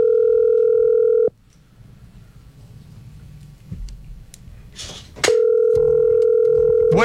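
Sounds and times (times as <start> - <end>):
telephone dial tone while a call is being placed: 0.0 - 1.3, 5.4 - 7.0
low noise: 0.0 - 7.0.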